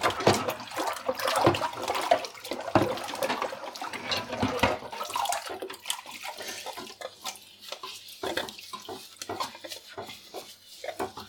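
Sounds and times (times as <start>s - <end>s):
sink dishwater splashing while washing a ladle and a large pot lid: 0.0s - 11.2s
ladle and large pot lid clinking in sink dishwater: 2.7s - 4.9s.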